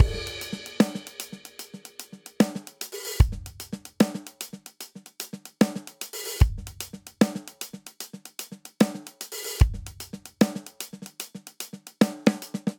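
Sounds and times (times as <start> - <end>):
triplet hip hop drum intro in four four: 0.0 - 12.7.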